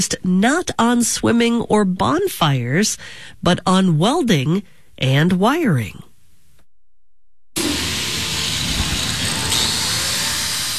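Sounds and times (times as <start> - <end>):
speech: 0.0 - 6.1
grinder smoothing the edges of a fresh weld: 7.6 - 10.7.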